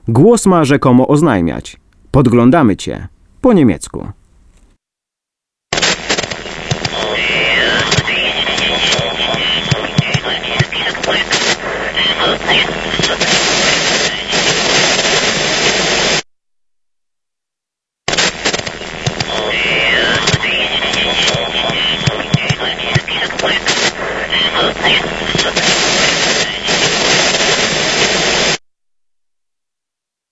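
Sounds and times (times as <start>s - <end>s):
speech: 0.1s - 4.2s, 12.3s - 13.7s, 24.6s - 26.2s
dense crackling static from an old radio receiver: 5.7s - 16.2s, 18.1s - 28.6s.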